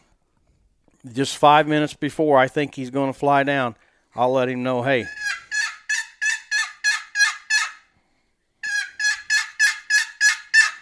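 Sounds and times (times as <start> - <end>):
speech: 1.0 - 5.2
excited turkey hen yelps made on a turkey call: 5.0 - 7.9, 8.6 - 10.8.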